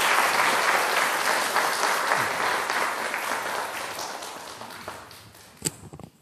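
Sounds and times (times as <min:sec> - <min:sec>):
applause from a large gathering: 0:00.0 - 0:05.7.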